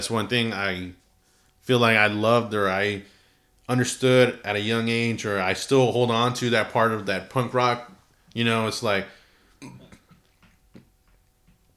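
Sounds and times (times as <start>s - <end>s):
speech: 0.0s - 1.0s, 1.6s - 9.8s
throaty burp: 9.6s - 10.2s
soft croaking gulps and hiccup-like catches: 9.6s - 11.0s.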